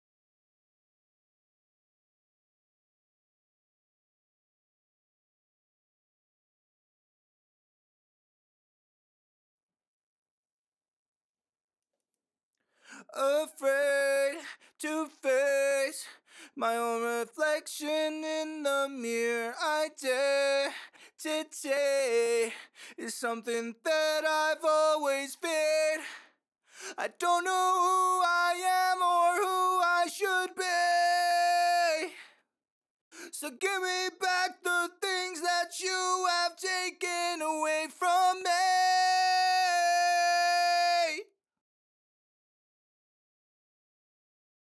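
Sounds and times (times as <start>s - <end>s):
heavy dry a cappella vocal harmony in D sharp minor: 13.0s - 26.3s, 26.9s - 32.3s, 33.2s - 41.3s.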